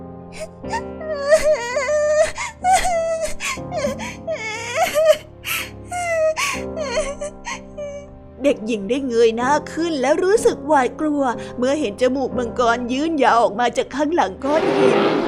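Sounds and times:
speech: 0.3s - 0.9s, 8.4s - 15.2s
girl crying after hurting her ankle: 0.4s - 8.1s.

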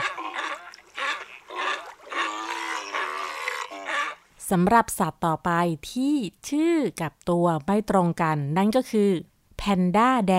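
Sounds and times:
California sea lion barking and grunting: 0.0s - 4.3s
speech: 4.5s - 10.3s.

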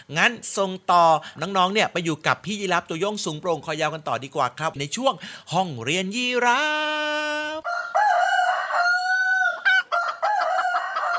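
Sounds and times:
speech: 0.1s - 7.2s
rooster crowing: 7.6s - 11.1s
chickens clucking: 7.7s - 11.1s.

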